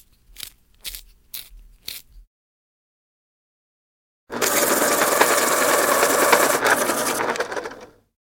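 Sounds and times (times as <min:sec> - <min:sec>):
electric pencil sharpener: 0:04.3 - 0:07.9.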